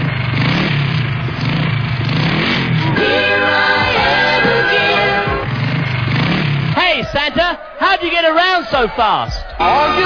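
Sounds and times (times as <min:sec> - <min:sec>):
motorbike engine revving: 0:00.0 - 0:07.8
speech: 0:08.7 - 0:10.0.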